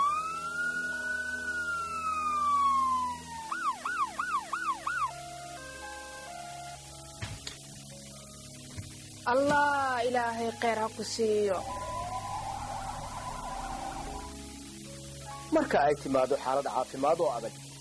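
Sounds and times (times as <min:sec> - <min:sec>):
ambulance siren wailing and yelping: 0:00.0 - 0:07.1, 0:11.4 - 0:15.0
speech: 0:09.3 - 0:11.8, 0:15.5 - 0:17.7.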